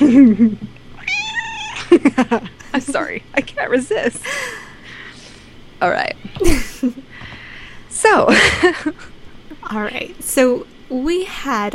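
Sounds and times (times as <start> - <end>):
laughter: 0.0 - 0.7, 1.7 - 4.7, 6.4 - 7.0, 8.3 - 9.1
speech: 0.3 - 0.7, 2.0 - 4.6, 5.8 - 7.0, 8.0 - 9.1, 9.7 - 11.7
cat meowing: 1.0 - 1.9.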